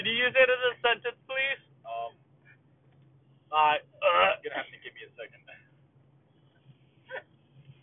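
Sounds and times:
low hum: 0.0 - 7.8
speech: 0.2 - 1.2
hiccup: 7.1 - 7.4.

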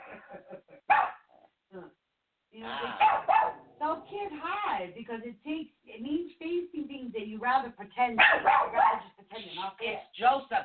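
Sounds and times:
dog barking at the door: 0.9 - 1.3, 3.0 - 3.7, 8.2 - 9.1
speech: 4.1 - 10.6.

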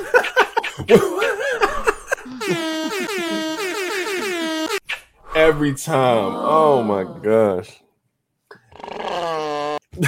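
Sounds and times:
laughter: 0.0 - 3.6
speech: 0.1 - 1.2, 5.4 - 7.8
air horn sound effect blast: 2.3 - 4.8.

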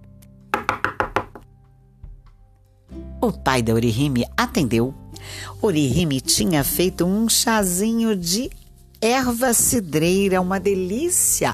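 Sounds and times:
firm knocking on a door: 0.5 - 2.4
soft thuds: 2.0 - 2.6
speech: 3.2 - 11.5.

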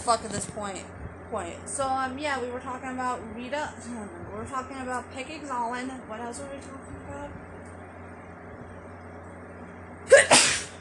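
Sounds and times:
speech: 0.0 - 7.4
person sneezing: 10.1 - 10.7.

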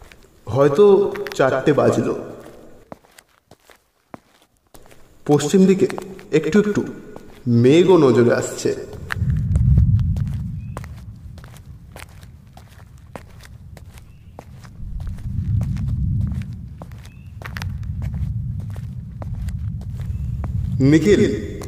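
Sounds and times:
footsteps of someone walking through a village: 0.0 - 21.6
speech: 0.6 - 2.3, 5.3 - 9.0, 20.8 - 21.5
low rumbling background: 6.3 - 21.6.

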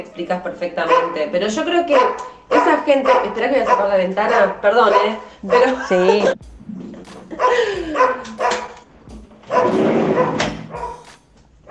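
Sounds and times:
speech: 0.1 - 6.5, 7.4 - 8.5
dog barking and whining: 0.8 - 6.2, 7.4 - 8.8, 9.5 - 11.0
laughter: 5.4 - 8.6.

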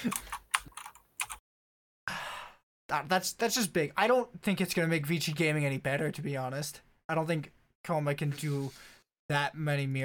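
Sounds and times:
speech: 0.0 - 0.2, 2.9 - 10.0
computer keyboard typing: 0.0 - 1.4.

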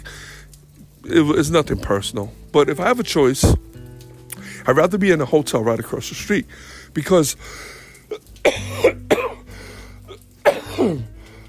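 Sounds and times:
speech: 1.1 - 3.7, 4.7 - 9.0
person coughing: 8.4 - 9.5, 10.4 - 11.1.

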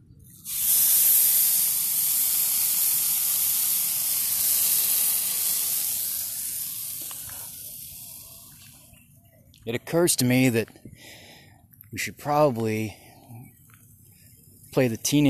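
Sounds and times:
food searing in a hot pan: 0.5 - 8.6
speech: 9.6 - 11.2, 11.9 - 13.4, 14.8 - 15.2.

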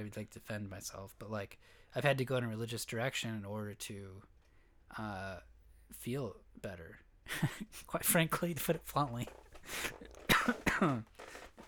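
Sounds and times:
speech: 0.0 - 4.3, 4.9 - 11.6
person coughing: 9.9 - 11.2.

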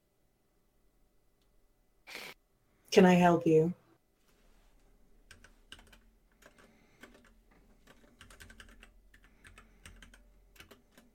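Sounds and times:
speech: 2.9 - 3.8
keyboard typing: 5.2 - 11.1.

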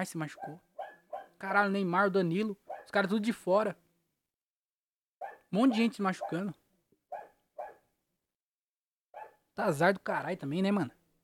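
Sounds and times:
speech: 0.0 - 0.7, 1.4 - 3.8, 5.5 - 6.6, 9.6 - 11.0
dog barking: 0.3 - 1.4, 2.7 - 3.0, 5.2 - 7.9, 9.2 - 9.4.

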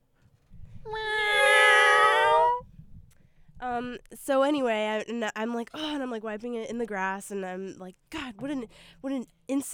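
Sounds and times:
several voices imitating a cat's meow: 0.9 - 2.6
speech: 3.8 - 9.7.

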